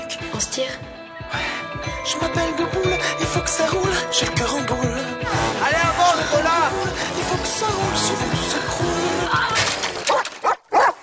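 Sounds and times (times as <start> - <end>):
speech: 0.1 - 2.7, 3.5 - 9.4
dog barking: 10.1 - 11.0.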